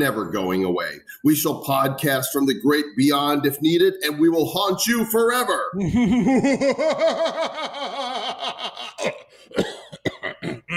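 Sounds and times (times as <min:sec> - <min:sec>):
speech: 0:00.0 - 0:09.7
laughter: 0:05.8 - 0:09.2
person coughing with harsh hacking bursts: 0:09.0 - 0:10.7.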